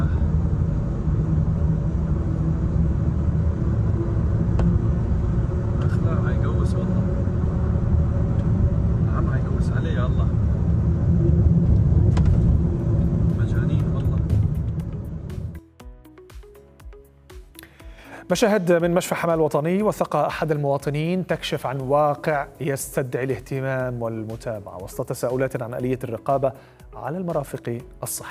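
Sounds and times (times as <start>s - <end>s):
car driving on a road, engine and road noise: 0.0s - 15.5s
speech: 18.3s - 28.2s.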